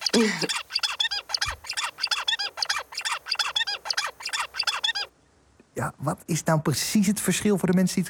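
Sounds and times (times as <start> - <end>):
zebra finch singing while its brain is altered by a drug: 0.0 - 5.1
speech: 0.2 - 0.8, 5.8 - 8.0.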